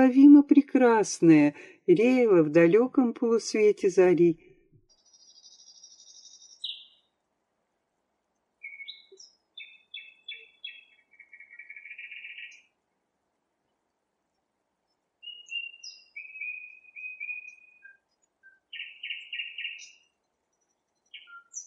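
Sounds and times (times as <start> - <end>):
speech: 0.0 - 4.5
nightingale singing at night: 4.9 - 7.2, 8.6 - 12.8, 15.2 - 21.6.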